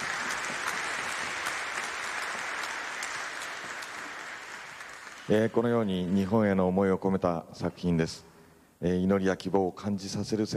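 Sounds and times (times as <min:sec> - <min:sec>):
room full of people clapping: 0:00.0 - 0:06.3
speech: 0:05.3 - 0:10.5.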